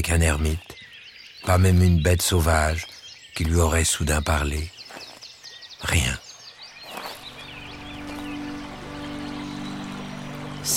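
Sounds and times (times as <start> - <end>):
speech: 0.0 - 0.7, 1.4 - 4.8, 5.8 - 6.2
bird chirps: 0.0 - 10.7
clear stream water flowing where two streams meet in a deep forest valley: 6.8 - 10.7.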